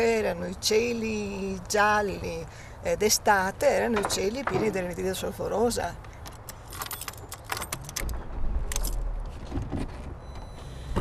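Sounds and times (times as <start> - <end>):
speech: 0.0 - 6.1
car driving along an industrial road with low engine and road rumble: 0.0 - 11.0
keys jangling swinging from the ignition: 6.2 - 8.1, 8.7 - 9.0.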